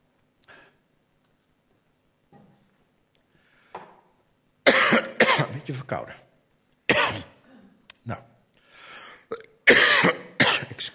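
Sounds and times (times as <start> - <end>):
person coughing: 4.7 - 5.6, 6.9 - 7.8, 9.3 - 10.9
speech: 5.7 - 6.2, 8.1 - 8.3.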